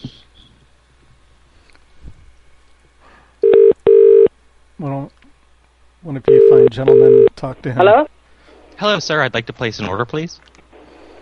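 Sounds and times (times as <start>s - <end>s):
loud steady telephone dialing tones: 3.4s - 4.3s, 6.3s - 7.3s
speech: 6.0s - 8.2s, 8.8s - 10.5s.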